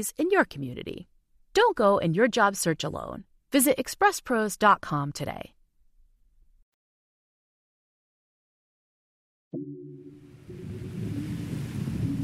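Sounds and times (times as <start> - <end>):
speech: 0.0 - 5.6
surf breaking: 10.2 - 12.2.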